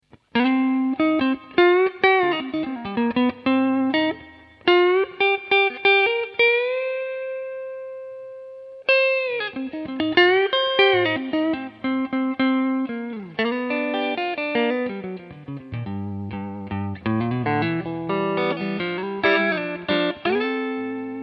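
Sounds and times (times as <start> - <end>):
Telecaster electric guitar with 60 neck: 0.0 - 21.2.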